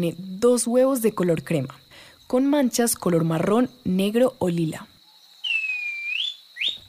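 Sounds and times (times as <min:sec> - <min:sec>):
speech: 0:00.0 - 0:04.9
thrush-like schiffornis whistling song: 0:05.4 - 0:06.8.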